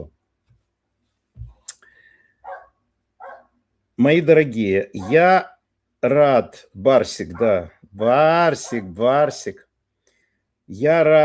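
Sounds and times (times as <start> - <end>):
small dog barking: 2.4 - 3.5, 5.0 - 5.2, 8.6 - 8.9
speech: 4.0 - 9.7, 10.7 - 11.2.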